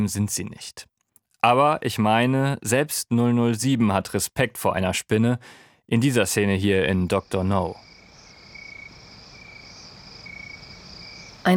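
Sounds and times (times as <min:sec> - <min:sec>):
speech: 0:00.0 - 0:07.9
crickets chirping at night: 0:06.7 - 0:11.5.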